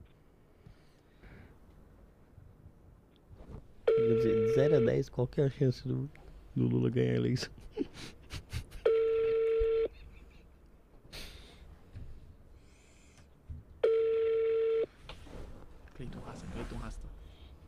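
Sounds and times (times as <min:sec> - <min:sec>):
electronic telephone ringback tones with no answer: 0:03.9 - 0:05.0, 0:08.9 - 0:09.9, 0:13.8 - 0:14.9
speech: 0:04.1 - 0:08.2.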